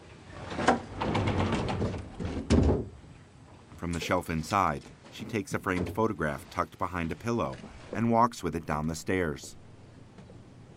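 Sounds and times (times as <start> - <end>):
sliding closet door rolling open: 0.4 - 2.9
speech: 3.9 - 9.6.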